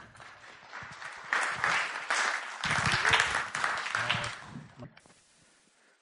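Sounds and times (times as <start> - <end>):
audience voices cheering: 0.0 - 4.6
audience applauding to welcome a speaker: 0.0 - 4.8.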